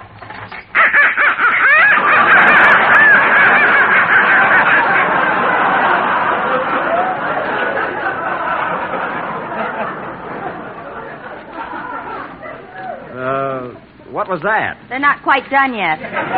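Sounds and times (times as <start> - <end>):
many live ducks quacking and honking: 0.3 - 6.2
laughter: 0.7 - 14.3, 15.8 - 16.3
speech: 14.3 - 16.3.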